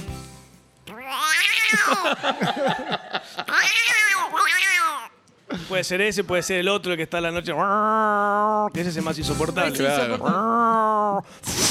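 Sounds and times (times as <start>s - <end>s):
person imitating a cat caterwauling: 0.9s - 2.0s, 3.5s - 5.1s, 7.5s - 8.8s, 10.2s - 11.3s
laughter: 1.7s - 3.6s, 9.8s - 10.6s
speech: 1.7s - 11.6s.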